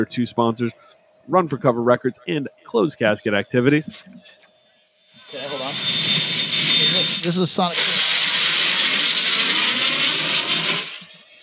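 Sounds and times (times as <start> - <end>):
speech: 0.0 - 4.4, 7.2 - 8.0
video game jet afterburner sound effect: 5.2 - 11.2.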